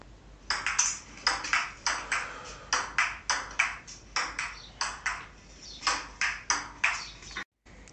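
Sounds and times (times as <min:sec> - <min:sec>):
ping-pong ball bouncing during a rally: 0:00.5 - 0:07.2.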